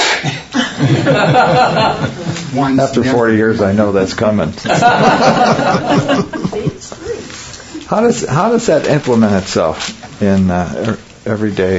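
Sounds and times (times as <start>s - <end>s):
sharp breathy sneeze: 0.0s - 0.5s
laughter: 0.5s - 2.6s, 4.6s - 6.9s
speech: 1.0s - 6.7s, 7.9s - 11.7s.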